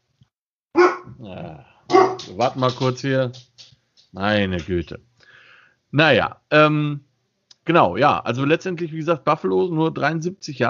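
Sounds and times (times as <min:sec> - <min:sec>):
dog barking: 0:00.8 - 0:01.1, 0:01.9 - 0:02.4
speech: 0:01.2 - 0:03.5, 0:04.1 - 0:05.1, 0:05.9 - 0:07.1, 0:07.7 - 0:10.6.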